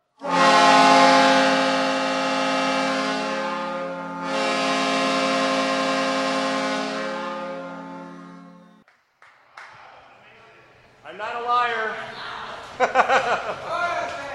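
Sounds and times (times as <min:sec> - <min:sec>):
Great Lakes freighter horn blast: 0:00.2 - 0:08.8
laughter: 0:11.9 - 0:14.3.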